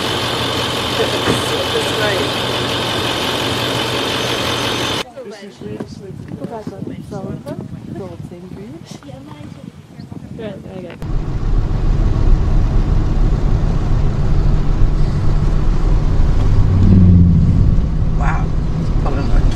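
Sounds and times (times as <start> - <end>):
boat engine droning: 0.0 - 5.0, 11.0 - 19.5.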